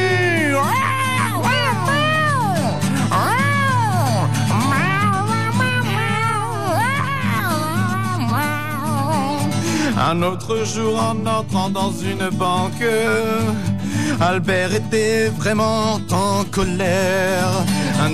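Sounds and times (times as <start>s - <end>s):
cat meowing: 0.6s - 9.4s
speech: 10.1s - 18.1s.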